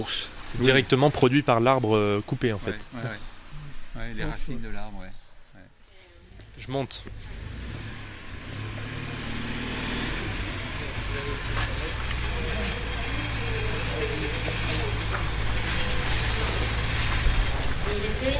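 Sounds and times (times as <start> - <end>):
speech: 0.0 - 3.3, 4.0 - 5.2, 6.6 - 7.4, 17.9 - 18.3
car traffic rumbling: 0.0 - 18.3
faint murmuring voices: 10.2 - 17.1.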